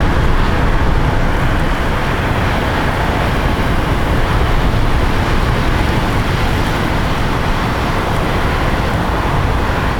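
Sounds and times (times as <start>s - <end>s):
waves ambience: 0.0s - 9.9s.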